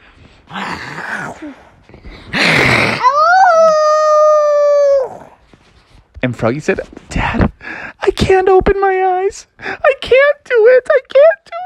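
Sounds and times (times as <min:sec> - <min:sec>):
speech: 0:00.5 - 0:03.2, 0:06.2 - 0:07.5, 0:08.2 - 0:11.4
person imitating a wolf howl with huffs and growl: 0:03.0 - 0:05.4.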